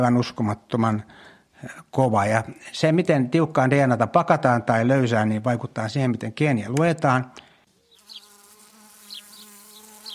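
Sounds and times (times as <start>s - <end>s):
speech: 0.0s - 7.5s
honeybees buzzing in a hive: 7.7s - 10.1s.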